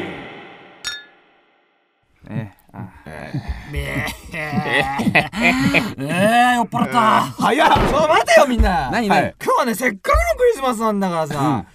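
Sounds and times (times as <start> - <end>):
glasses clinking in a toast: 0.8 - 1.1
several people talking and laughing loudly: 2.3 - 9.4
speech: 2.9 - 11.7.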